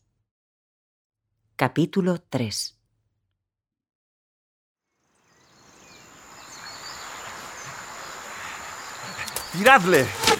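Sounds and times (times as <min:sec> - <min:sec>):
speech: 0:01.6 - 0:02.8, 0:09.6 - 0:10.3
swarm of bees buzzing: 0:05.8 - 0:10.3.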